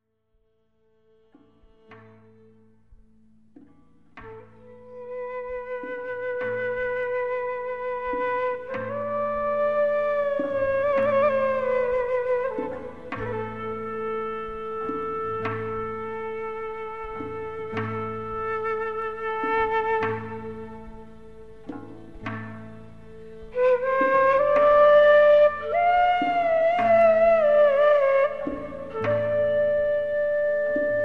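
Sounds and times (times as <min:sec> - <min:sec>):
nay flute playing: 0:04.2 - 0:22.4, 0:23.3 - 0:31.0.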